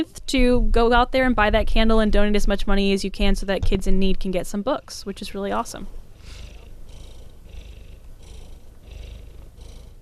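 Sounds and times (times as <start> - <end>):
speech: 0.0 - 6.5
female domestic cat purring into a microphone: 6.1 - 10.0.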